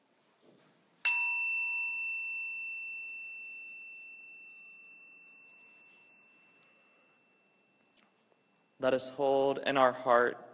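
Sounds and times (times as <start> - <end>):
meditation chime ringing: 1.1 - 9.3
speech: 8.8 - 10.5.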